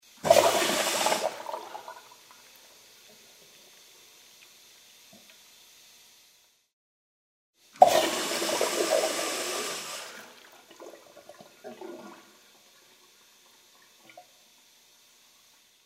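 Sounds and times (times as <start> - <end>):
urinal flushing: 0.1 - 3.9, 7.8 - 15.8.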